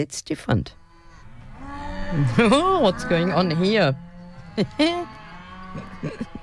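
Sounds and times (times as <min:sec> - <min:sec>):
speech: 0:00.0 - 0:00.8, 0:02.1 - 0:06.4
cow mooing: 0:00.8 - 0:06.4
laughter: 0:02.2 - 0:03.6, 0:04.4 - 0:06.4.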